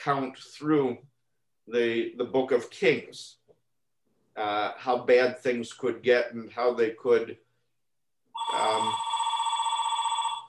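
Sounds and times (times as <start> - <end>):
speech: 0.0 - 1.1, 1.7 - 3.4, 4.4 - 7.4, 8.4 - 9.1
telephone ringing with a steady electronic tone: 8.4 - 10.4.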